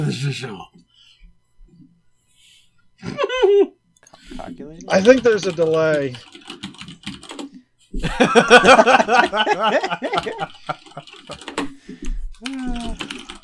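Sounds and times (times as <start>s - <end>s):
speech: 0.0s - 0.8s, 3.0s - 6.6s, 8.0s - 11.7s
people chuckling and laughing: 3.0s - 3.7s, 8.0s - 11.9s
fingers typing on a computer keyboard: 4.4s - 7.6s, 10.2s - 13.4s.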